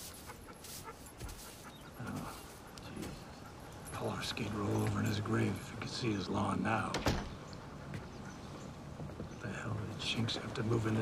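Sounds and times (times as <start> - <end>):
dog panting: 0.0 - 6.5, 7.5 - 8.8
speech: 4.1 - 7.2, 10.1 - 11.0.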